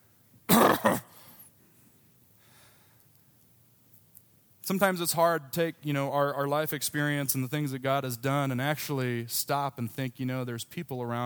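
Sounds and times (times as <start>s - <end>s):
person coughing in the audience: 0.5s - 1.4s
speech: 4.7s - 11.2s.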